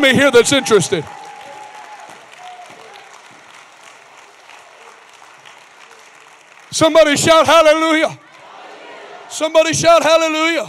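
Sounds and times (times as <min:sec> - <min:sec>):
speech: 0:00.0 - 0:01.2, 0:06.7 - 0:08.2, 0:09.3 - 0:10.6
large crowd clapping: 0:00.0 - 0:09.3
scattered cheers and voices: 0:00.0 - 0:10.6.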